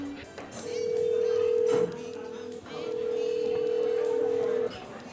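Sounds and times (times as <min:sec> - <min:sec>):
long steady phone ringback tones: 0:00.7 - 0:02.1, 0:02.8 - 0:04.7.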